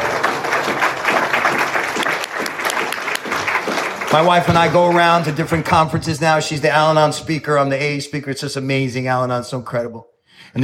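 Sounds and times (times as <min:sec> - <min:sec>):
audience applauding: 0:00.0 - 0:05.8
speech: 0:04.1 - 0:10.6.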